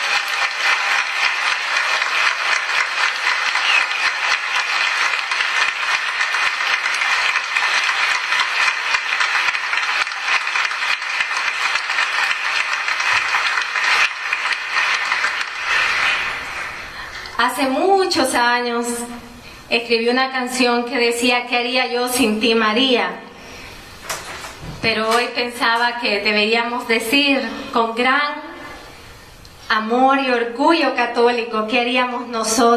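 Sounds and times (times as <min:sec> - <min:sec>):
large crowd applauding: 0:00.0 - 0:17.4
speech: 0:17.6 - 0:23.2, 0:24.8 - 0:28.3, 0:29.8 - 0:32.7.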